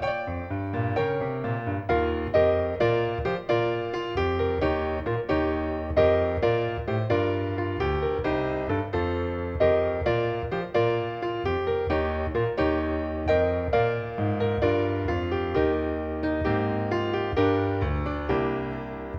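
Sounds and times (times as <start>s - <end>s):
musical accompaniment: 0.0s - 19.1s.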